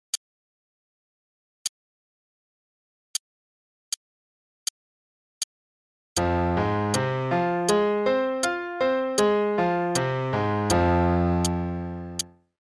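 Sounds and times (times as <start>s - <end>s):
arpeggios in F minor: 6.2s - 12.3s.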